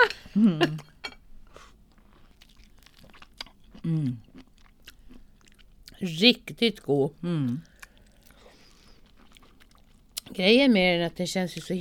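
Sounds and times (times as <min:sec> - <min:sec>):
speech: 0:00.4 - 0:00.9, 0:03.9 - 0:04.3, 0:06.0 - 0:07.7, 0:10.4 - 0:11.7
wet chewing of juicy orange slices: 0:01.5 - 0:06.2, 0:06.8 - 0:10.4.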